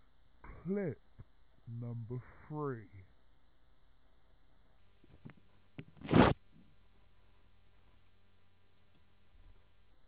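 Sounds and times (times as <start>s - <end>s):
speech: 0.7s - 1.1s, 1.7s - 3.1s
paper ripping: 6.0s - 6.4s.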